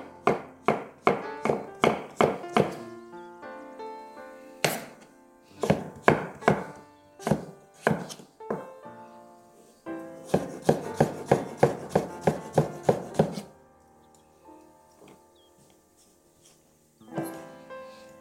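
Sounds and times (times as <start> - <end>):
knife dicing squash into tiny cubes on a cutting board: 0.2 - 2.8, 4.6 - 5.0, 5.6 - 8.6, 10.2 - 13.5.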